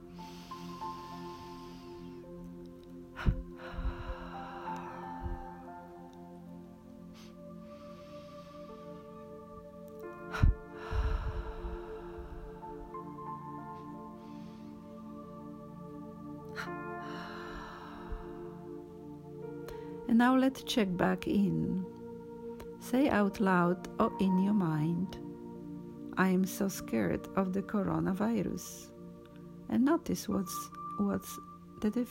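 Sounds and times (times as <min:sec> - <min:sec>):
deep breathing, inhaling through nose, double exhale through mouth: 0:00.0 - 0:06.1, 0:07.0 - 0:20.1
quiet sustained musical drone: 0:00.0 - 0:29.8
speech: 0:20.2 - 0:21.9, 0:22.9 - 0:25.2, 0:26.2 - 0:28.9, 0:29.7 - 0:32.1.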